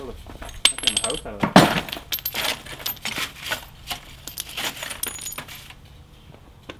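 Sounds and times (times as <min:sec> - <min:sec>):
heavy chunk of glass clinking and knocking: 0:00.5 - 0:03.1, 0:04.3 - 0:05.5.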